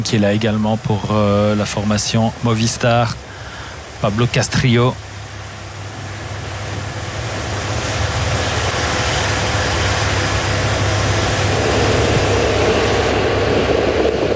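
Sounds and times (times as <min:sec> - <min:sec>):
speech: 0:00.0 - 0:03.4, 0:04.0 - 0:05.1
motorcycle engine revving during a road cycling race: 0:07.3 - 0:14.2.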